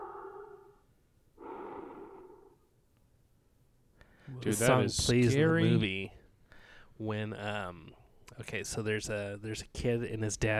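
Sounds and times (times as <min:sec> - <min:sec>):
louder breathy inhale in a song: 0:00.0 - 0:00.8, 0:01.4 - 0:02.6, 0:06.5 - 0:06.9
slow drawn-out exhale in a song: 0:00.0 - 0:00.8, 0:01.4 - 0:02.6
speech: 0:04.4 - 0:06.2, 0:07.0 - 0:10.5.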